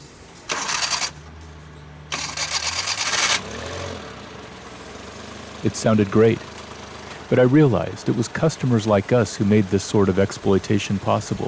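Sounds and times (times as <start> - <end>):
car engine with new spark plugs cranking and idling: 0.0 - 11.4
speech: 5.6 - 6.5, 7.3 - 11.4.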